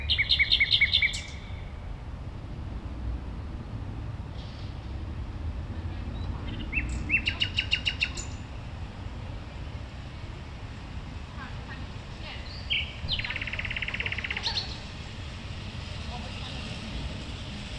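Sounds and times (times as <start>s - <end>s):
common nightingale singing at a playground in Berlin: 0.0s - 1.8s, 6.1s - 8.7s, 11.8s - 15.6s
low traffic rumble: 0.0s - 17.7s.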